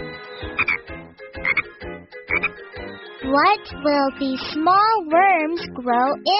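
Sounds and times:
frogs croaking in chorus: 0.6 - 0.8, 1.4 - 1.6, 2.3 - 2.6
speech: 3.3 - 6.3.

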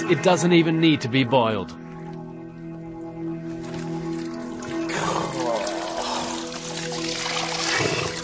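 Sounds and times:
speech: 0.1 - 1.8
spring water scooped and poured from a dug-out spring: 3.5 - 8.2.

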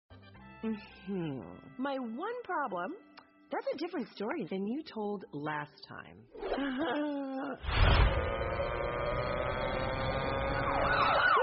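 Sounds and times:
speech: 0.6 - 9.3
low rumble: 7.6 - 10.6
police siren wailing: 9.8 - 11.4.

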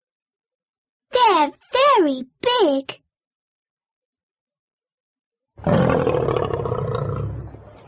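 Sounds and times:
speech: 1.4 - 3.0, 5.6 - 6.2
tiger roaring: 5.6 - 7.6.

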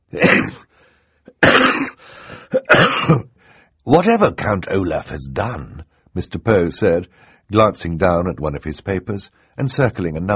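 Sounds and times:
person coughing into a handkerchief: 0.2 - 0.7, 1.3 - 3.3
speech: 2.8 - 10.3.

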